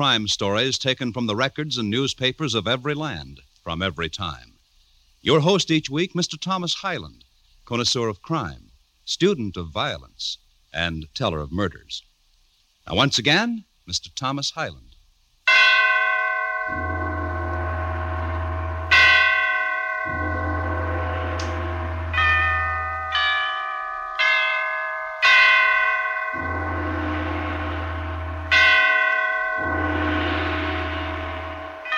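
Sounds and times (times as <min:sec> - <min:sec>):
speech: 0:00.0 - 0:04.5, 0:05.2 - 0:12.1, 0:12.8 - 0:14.9
great church bells tolling a requiem, deep and higher bells: 0:15.5 - 0:31.9.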